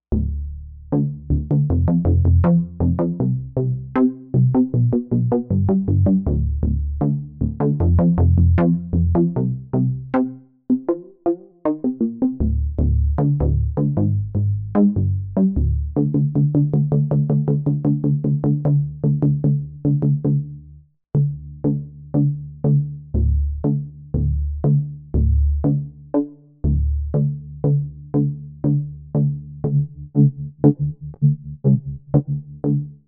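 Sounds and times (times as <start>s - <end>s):
bass: 0.0s - 33.0s.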